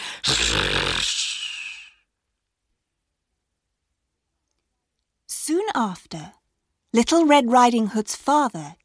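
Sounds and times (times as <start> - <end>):
person snoring with a rattling rumble: 0.0 - 2.0
speech: 5.6 - 8.8.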